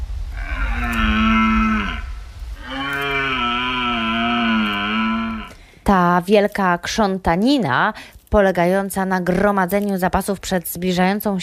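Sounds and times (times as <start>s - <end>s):
low rumble: 0.0s - 11.4s
red deer stags bellowing during the autumn rut in Poland: 0.3s - 5.6s
speech: 5.9s - 11.4s.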